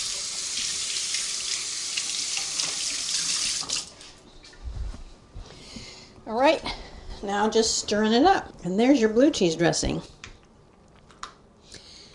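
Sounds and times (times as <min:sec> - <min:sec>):
tap water running into a kitchen sink while hands are washed: 0:00.0 - 0:04.0
speech: 0:06.3 - 0:10.2.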